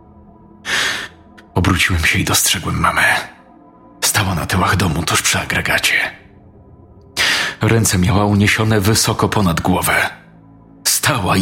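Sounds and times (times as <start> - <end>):
heavy wheezing raspy breath: 0.6 - 1.4, 7.2 - 7.6
speech: 1.7 - 3.3, 4.2 - 6.2, 7.6 - 10.2, 11.1 - 11.4.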